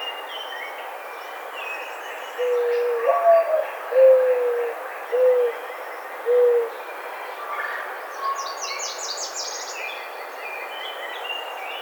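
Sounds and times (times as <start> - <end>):
mourning dove cooing: 2.4 - 5.6, 6.3 - 6.8.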